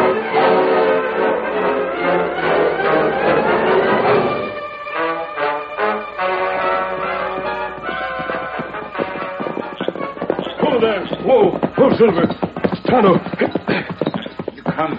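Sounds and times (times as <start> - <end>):
music-like tones: 0.0 - 13.9
horse hooves clip-clopping: 5.8 - 14.9
speech: 12.0 - 12.3, 13.0 - 13.4.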